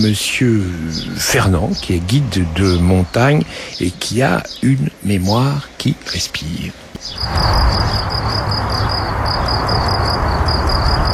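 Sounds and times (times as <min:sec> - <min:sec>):
speech: 0:00.0 - 0:08.4
crickets chirping: 0:06.5 - 0:11.1.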